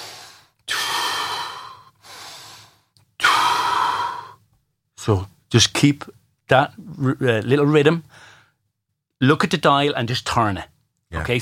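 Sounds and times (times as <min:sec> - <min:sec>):
slow controlled breathing close to the microphone: 0:00.0 - 0:04.4, 0:08.1 - 0:08.6
speech: 0:05.0 - 0:08.3, 0:09.2 - 0:11.3.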